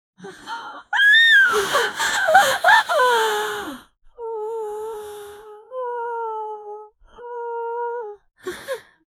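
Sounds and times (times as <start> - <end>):
female creature vocal: 1.0 - 3.7.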